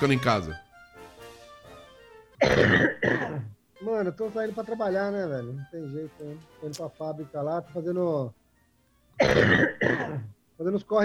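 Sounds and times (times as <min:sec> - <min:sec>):
speech: 0:00.0 - 0:00.6, 0:02.4 - 0:08.4, 0:09.2 - 0:11.0
faint hum: 0:00.0 - 0:11.0
person coughing harshly: 0:02.4 - 0:03.6, 0:09.2 - 0:10.3.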